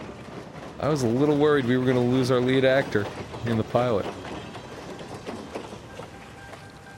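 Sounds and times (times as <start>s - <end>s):
train rolling past on tracks: 0.0s - 6.9s
speech: 0.8s - 4.4s.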